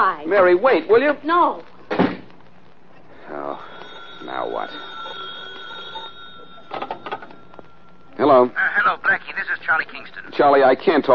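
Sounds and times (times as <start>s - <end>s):
speech: 0.1s - 1.7s, 3.4s - 4.9s, 8.2s - 11.1s
telephone ringing: 3.2s - 10.4s.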